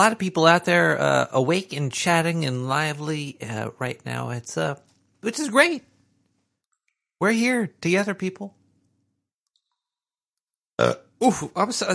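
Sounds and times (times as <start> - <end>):
speech: 0.0 - 5.9, 7.2 - 8.6, 10.8 - 11.9
short throaty burp: 10.8 - 11.1.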